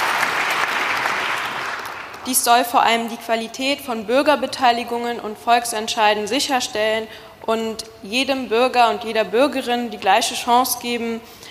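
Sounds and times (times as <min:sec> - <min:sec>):
audience applause after a political speech: 0:00.0 - 0:02.3
speech: 0:02.3 - 0:11.4.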